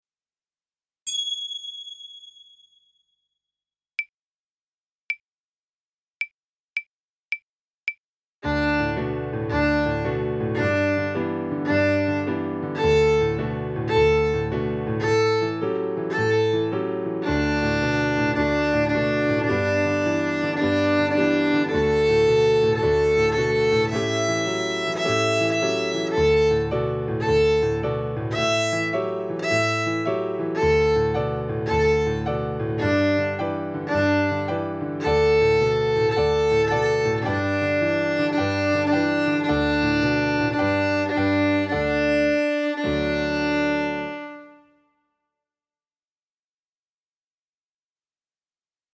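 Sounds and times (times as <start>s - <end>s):
violin: 8.4s - 44.8s.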